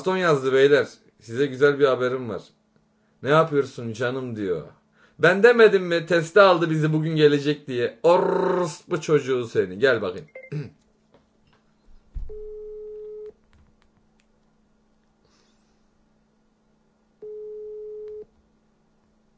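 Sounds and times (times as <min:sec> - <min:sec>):
speech: 0:00.0 - 0:02.6, 0:03.2 - 0:10.8
telephone busy signal: 0:12.3 - 0:13.3, 0:17.2 - 0:18.3.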